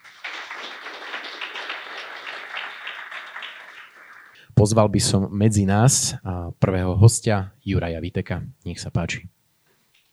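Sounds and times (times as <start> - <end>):
crowd applauding with dense overlapping claps: 0.0 - 4.4
speech: 4.6 - 9.4.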